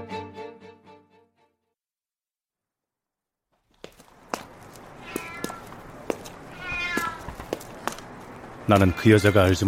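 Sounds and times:
gritty noisy street background: 3.6s - 9.6s
stray cat meowing: 4.9s - 7.5s, 8.7s - 9.6s
speech: 8.7s - 9.6s.

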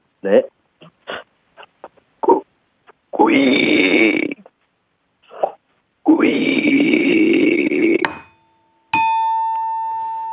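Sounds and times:
speech: 0.2s - 0.6s
voice imitating a hungry pig: 1.6s - 2.5s, 3.1s - 4.5s, 5.2s - 8.0s
bright chime ringing: 8.1s - 10.3s.

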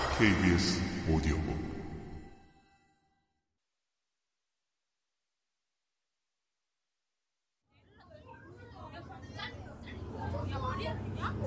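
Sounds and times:
speech: 0.2s - 1.8s
overlapping chatter from many young voices inside a noisy bus: 7.8s - 11.4s.

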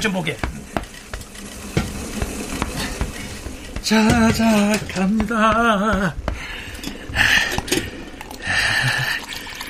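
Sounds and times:
speech: 0.0s - 0.6s, 3.8s - 6.5s, 7.2s - 7.5s
boiling water poured into instant food cup: 7.8s - 9.6s.

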